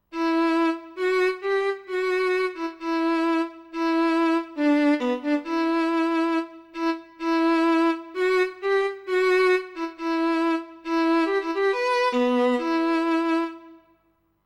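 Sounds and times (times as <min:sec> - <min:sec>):
violin main melody: 0:00.1 - 0:14.0.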